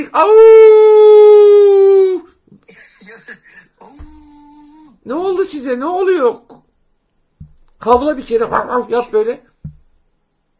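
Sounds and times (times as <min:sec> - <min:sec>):
speech: 0:00.0 - 0:00.7, 0:05.0 - 0:06.5, 0:07.8 - 0:09.5
person howling imitating a werewolf: 0:00.2 - 0:02.3.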